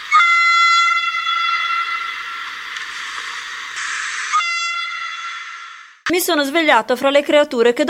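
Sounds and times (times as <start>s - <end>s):
train whistle blaring in a long loud steady blast: 0.0s - 2.7s, 3.8s - 6.0s
low rumble of passing train wheels: 0.0s - 4.4s
speech: 6.1s - 7.8s.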